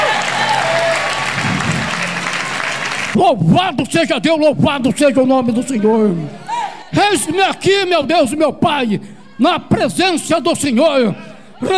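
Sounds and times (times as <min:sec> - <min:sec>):
congregation applauding: 0:00.0 - 0:03.2
speech: 0:03.2 - 0:11.7.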